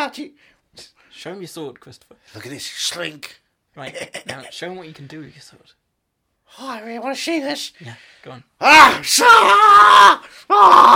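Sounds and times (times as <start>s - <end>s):
speech: 0.0s - 5.8s, 6.5s - 10.9s
headless character screaming: 8.6s - 10.9s.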